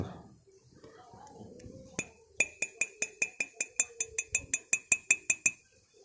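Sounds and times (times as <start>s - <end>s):
low murmuring voice: 0.0s - 4.8s
bright ringing glass clinks: 2.0s - 5.6s.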